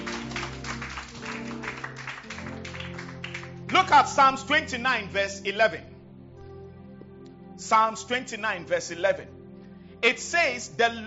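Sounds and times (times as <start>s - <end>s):
crowd clapping steadily and loudly: 0.0s - 4.2s
speech: 3.7s - 5.9s, 7.7s - 9.4s, 10.0s - 11.0s.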